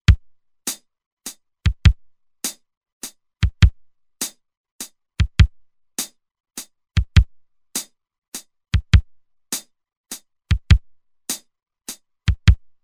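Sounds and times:
Roland TR-505 drum machine waltz rhythm in triplets: 1.7s - 2.0s, 3.4s - 3.8s, 5.2s - 5.6s, 7.0s - 7.3s, 8.7s - 9.1s, 10.5s - 10.8s, 12.3s - 12.6s.

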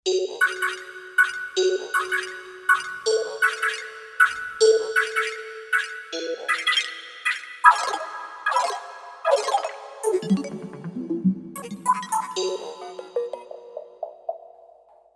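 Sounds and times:
Kawai K5000S factory presets: 0.4s - 14.7s.

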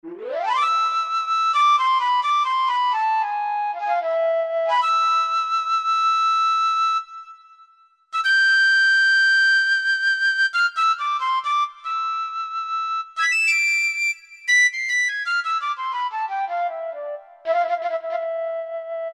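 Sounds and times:
piccolo patch on Yamaha TG500: 0.0s - 7.6s, 8.2s - 19.1s.

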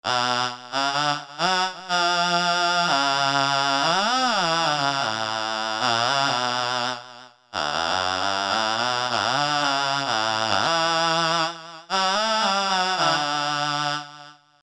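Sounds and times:
Korg MS2000 synthesizer voice: 0.1s - 6.6s, 7.6s - 14.1s.

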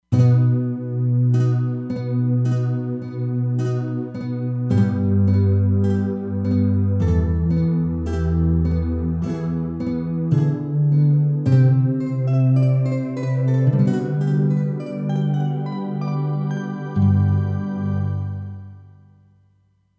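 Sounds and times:
nylon pad patch on E-mu Proteus-3 synthesizer: 0.1s - 19.0s.

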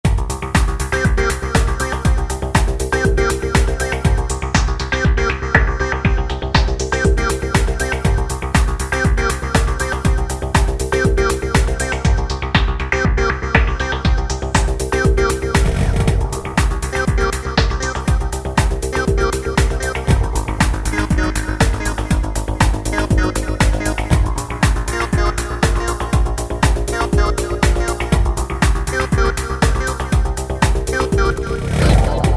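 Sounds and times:
filtered drum beat: 0.0s - 32.3s.

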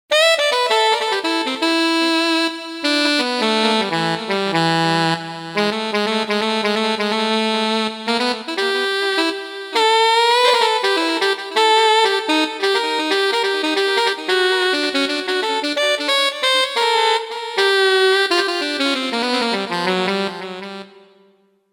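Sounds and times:
Roland JV-880 alto lead sax: 0.1s - 21.4s.

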